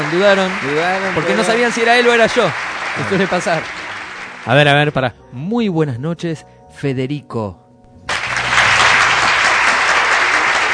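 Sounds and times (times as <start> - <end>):
studio audience applause: 0.0 - 4.9, 8.1 - 10.7
speech: 0.1 - 3.8, 4.4 - 7.6.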